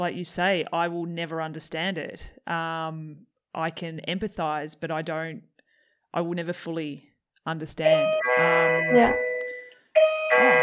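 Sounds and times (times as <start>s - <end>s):
speech: 0.0s - 5.5s, 6.1s - 9.2s
doorbell ringing with bright electronic chime tones: 7.8s - 10.6s.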